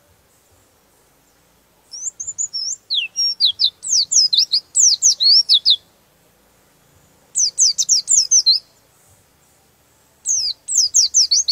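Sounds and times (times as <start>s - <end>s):
white-eye giving thin high descending twitters: 1.9s - 5.9s, 7.3s - 8.7s, 10.2s - 11.5s.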